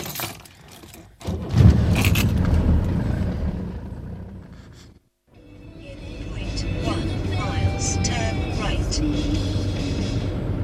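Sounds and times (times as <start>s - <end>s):
rattles and jangling: 0.0s - 1.2s
road rumble inside a moving car driving into Dunstable from Luton: 1.5s - 10.6s
car engine drone: 1.6s - 5.0s, 5.8s - 10.6s
oncoming traffic: 1.6s - 10.6s.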